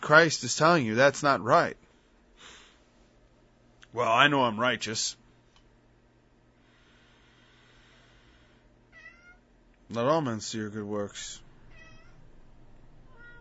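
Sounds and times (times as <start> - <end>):
steady low hum: 0.0 - 13.4
speech: 0.1 - 1.8, 3.9 - 5.2, 9.9 - 11.4
cat meowing: 8.9 - 9.4, 11.7 - 12.2, 13.1 - 13.4.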